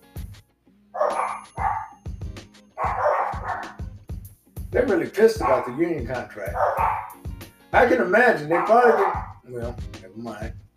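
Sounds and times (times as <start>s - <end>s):
dogs barking: 1.0s - 2.0s, 2.7s - 4.0s, 4.8s - 7.4s, 8.0s - 9.5s
speech: 4.8s - 7.0s, 7.8s - 10.6s.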